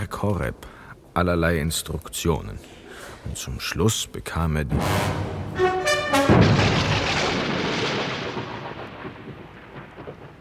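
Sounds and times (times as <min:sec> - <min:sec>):
speech: 0:00.2 - 0:05.3
thunderclap: 0:04.7 - 0:10.3
short tonal notes: 0:04.8 - 0:06.9.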